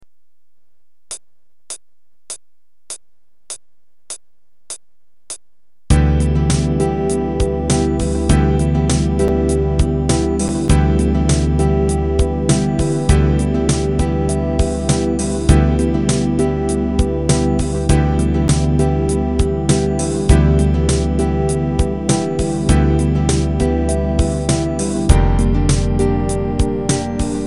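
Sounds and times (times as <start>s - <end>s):
relaxed music in E minor seven at 100 bpm: 5.9s - 27.4s.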